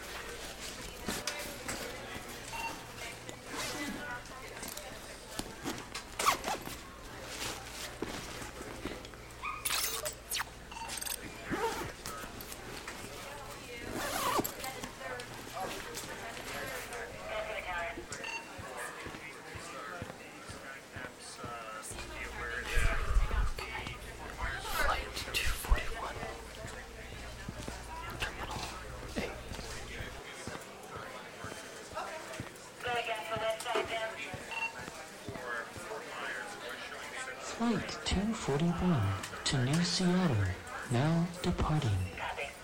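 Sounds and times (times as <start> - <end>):
faint voices murmuring: 0.0 - 42.6
bag zipper being zipped: 6.1 - 6.8, 9.6 - 10.5, 13.8 - 14.7
speech: 38.5 - 42.0.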